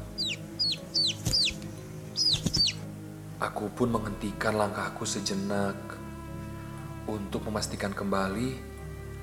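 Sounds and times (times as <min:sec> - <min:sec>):
baby chick peeping: 0:00.0 - 0:02.8
speech: 0:03.4 - 0:06.0, 0:07.1 - 0:08.7.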